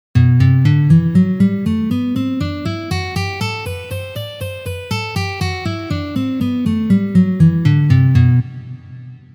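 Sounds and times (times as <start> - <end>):
natural E minor scale: 0.6 - 8.4.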